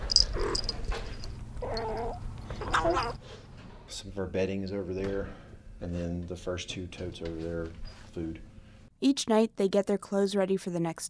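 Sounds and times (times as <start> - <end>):
insects chirping: 0.0 - 3.2
cat meowing: 1.6 - 3.2
speech: 4.0 - 11.0.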